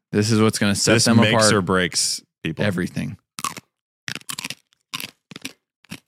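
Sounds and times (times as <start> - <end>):
speech: 0.1 - 3.2
crunching bites of a crisp snack: 3.4 - 6.0.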